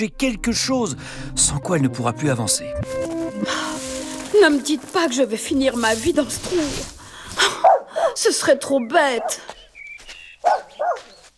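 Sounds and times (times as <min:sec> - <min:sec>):
speech: 0:00.0 - 0:03.6, 0:04.4 - 0:09.6
dog barking: 0:07.6 - 0:08.2, 0:10.4 - 0:11.2.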